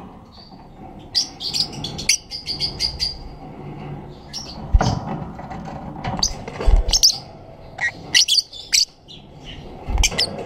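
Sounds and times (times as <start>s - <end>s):
Black-cheeked lovebird calling with piercing chirps and squeaks: 1.1s - 3.3s, 6.2s - 7.2s, 7.8s - 10.4s.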